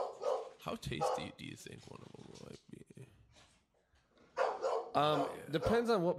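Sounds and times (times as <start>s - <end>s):
dog barking: 0.0s - 1.4s, 4.3s - 5.9s
speech: 0.6s - 2.7s, 5.0s - 6.1s.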